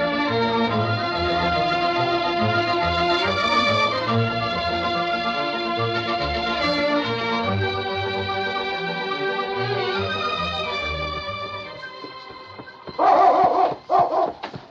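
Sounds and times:
sustained orchestral music: 0.0s - 14.0s
husky dog barking beside a trail in the Yukon: 13.0s - 14.4s.

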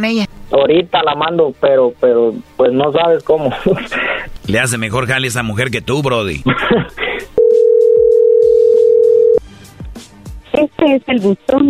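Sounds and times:
speech: 0.0s - 7.3s, 10.6s - 11.6s
laughter: 3.4s - 4.2s, 6.4s - 7.3s
ringback tone on an unanswered call: 7.4s - 9.4s.

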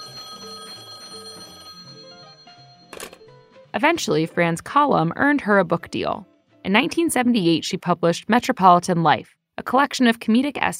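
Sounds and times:
landline telephone ringing with a metallic bell: 0.0s - 3.4s
soft music: 0.0s - 8.7s
speech: 3.8s - 10.7s.

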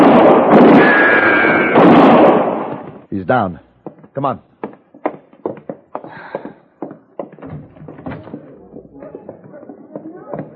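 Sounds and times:
rifle shots in a Western gunfight: 0.0s - 3.0s
continuous roar of noise: 0.0s - 10.5s
speech: 3.3s - 3.6s, 4.2s - 4.5s.

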